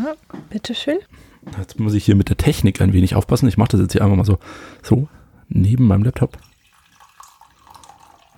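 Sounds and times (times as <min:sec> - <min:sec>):
speech: 0:00.0 - 0:06.5
hot tea being poured into a cup: 0:06.2 - 0:08.3.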